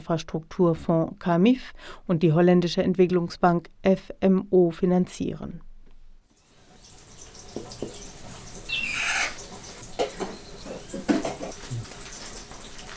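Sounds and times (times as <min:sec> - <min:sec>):
speech: 0:00.1 - 0:05.7
water boiling on a huge newly built stove in La Tejera Honduras: 0:06.3 - 0:12.9
brief high squawk-like chirp: 0:08.7 - 0:09.4.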